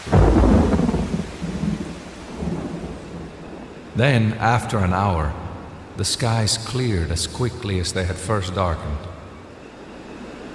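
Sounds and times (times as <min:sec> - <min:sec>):
loud deep thunder peal rumbling: 0:00.0 - 0:06.1
steady heavy rain hissing: 0:00.0 - 0:10.5
speech: 0:04.0 - 0:05.4, 0:06.0 - 0:09.1.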